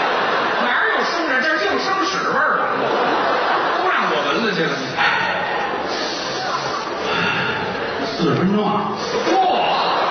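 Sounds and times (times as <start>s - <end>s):
laughter: 0.0s - 10.1s
person sniffing loudly and inhaling heavily: 5.0s - 7.7s.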